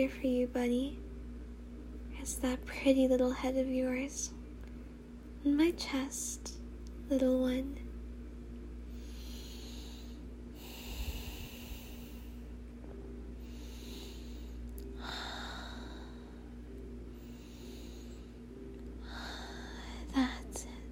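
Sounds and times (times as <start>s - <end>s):
speech: 0.0s - 1.0s, 2.2s - 4.4s, 5.4s - 7.8s
steady low hum: 0.0s - 20.8s
slow quiet breathing: 8.9s - 12.6s, 13.2s - 20.8s.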